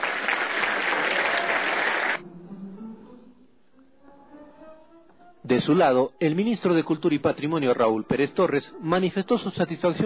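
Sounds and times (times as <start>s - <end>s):
audience applause welcoming people at a cultural event: 0.0s - 2.2s
speech: 5.5s - 10.0s.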